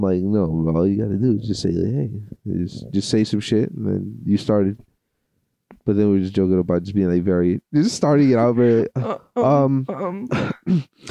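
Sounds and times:
speech: 0.0 - 4.9, 5.8 - 11.0
throat clearing: 10.2 - 11.0.

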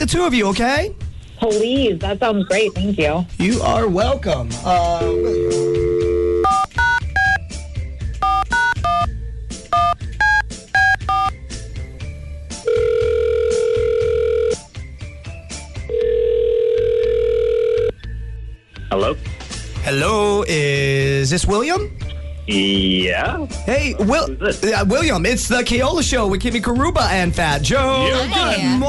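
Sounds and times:
speech: 0.0 - 5.6, 19.9 - 28.8
telephone dial tone: 5.0 - 7.0, 12.7 - 14.6, 15.9 - 18.0
two-tone telephone keypad beeps: 6.0 - 7.4, 8.2 - 9.1, 9.8 - 11.4.

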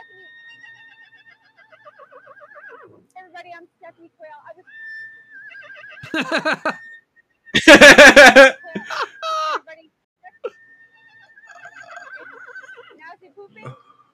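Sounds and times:
horse neighing: 0.0 - 3.0, 4.6 - 6.9, 10.5 - 13.8
speech: 3.9 - 5.1, 5.8 - 6.9, 7.6 - 9.0
laughter: 6.0 - 6.8, 7.6 - 9.6.

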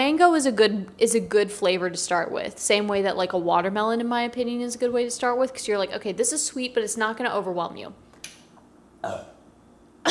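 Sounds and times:
speech: 0.1 - 8.1, 9.0 - 9.4
short throaty burp: 9.0 - 9.4.

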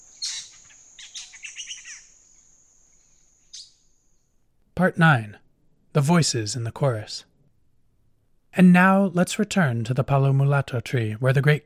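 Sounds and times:
high insect drone: 0.0 - 4.3
black-headed saltator harsh chattering: 0.2 - 2.1
speech: 4.8 - 5.4, 6.0 - 7.3, 8.6 - 11.6.

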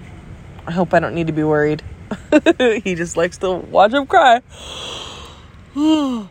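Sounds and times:
speech: 0.7 - 5.1, 5.8 - 6.2
person yawning: 5.8 - 6.2.

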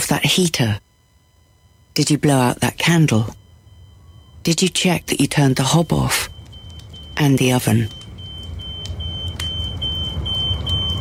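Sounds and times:
smoke alarm beeping: 0.0 - 10.9
speech: 0.1 - 0.8, 2.0 - 3.4, 4.4 - 6.4, 7.2 - 8.0
low rumble like a running engine: 3.4 - 10.9.

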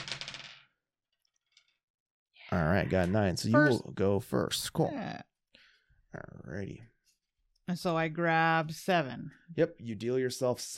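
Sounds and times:
dice rolled across a table: 0.0 - 1.8
speech: 2.5 - 5.3, 6.1 - 6.9, 7.7 - 10.7.

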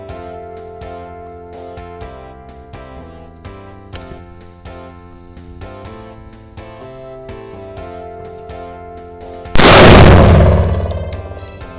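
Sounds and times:
explosion: 9.6 - 11.7.

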